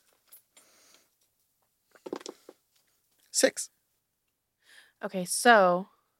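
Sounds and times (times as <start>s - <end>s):
ten-sided die clattering across a tabletop: 2.0s - 2.5s
speech: 3.4s - 3.8s, 5.0s - 5.9s.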